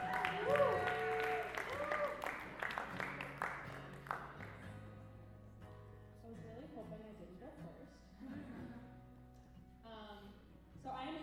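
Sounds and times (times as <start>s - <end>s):
voices cheering: 0.0s - 2.8s
audience clapping: 0.0s - 4.9s.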